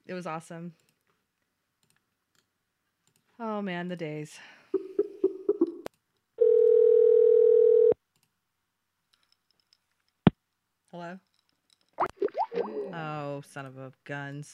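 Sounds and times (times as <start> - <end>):
speech: 0.1 - 0.9, 3.4 - 4.9, 10.9 - 11.3, 12.6 - 14.5
telephone dial tone from a dropped call: 6.4 - 8.0.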